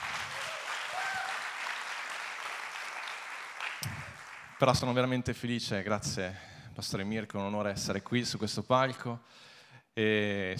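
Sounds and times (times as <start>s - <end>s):
audience at a Sunday church gathering clapping: 0.0s - 5.0s
speech: 4.6s - 10.5s.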